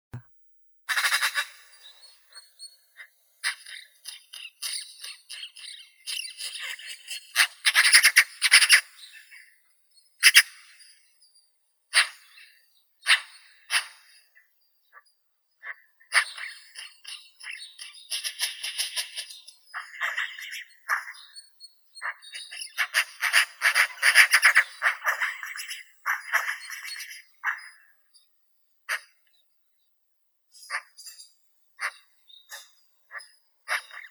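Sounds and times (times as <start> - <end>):
Pica pica magpie: 0.9 - 9.5, 10.2 - 11.1, 15.6 - 28.0, 30.6 - 34.0
nature sounds: 0.9 - 29.9, 30.5 - 34.0.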